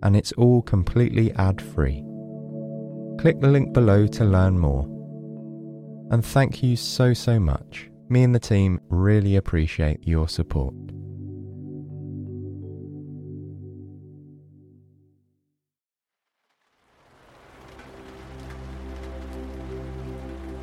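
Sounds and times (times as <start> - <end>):
speech: 0.1 - 2.1, 3.2 - 4.9, 6.1 - 11.0
low sustained musical drone: 1.0 - 8.1, 10.7 - 14.8, 17.4 - 20.6
heavy rain pattering against window glass: 16.2 - 20.6.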